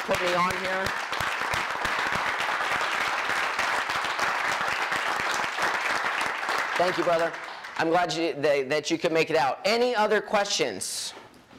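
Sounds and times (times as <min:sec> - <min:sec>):
audience applauding for a man asked to stand: 0:00.0 - 0:08.2
speech: 0:00.1 - 0:01.1, 0:06.8 - 0:11.2.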